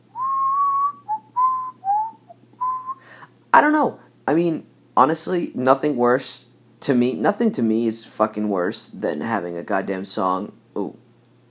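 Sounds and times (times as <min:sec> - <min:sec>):
faint low hum: 0:00.0 - 0:11.4
person whistling a tuneless melody: 0:00.1 - 0:03.2
speech: 0:03.6 - 0:11.4.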